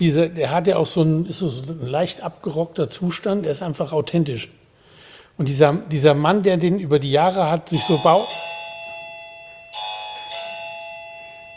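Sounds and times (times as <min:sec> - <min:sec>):
speech: 0:00.0 - 0:04.6, 0:05.4 - 0:08.5
electronic doorbell chiming: 0:07.8 - 0:11.5.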